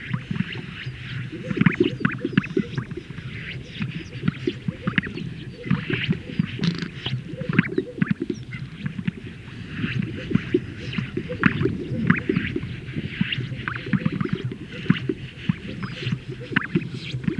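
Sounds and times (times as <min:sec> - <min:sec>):
Greater sage-grouse males displaying at a lek, popping and bubbling gulps: 0:01.4 - 0:17.3.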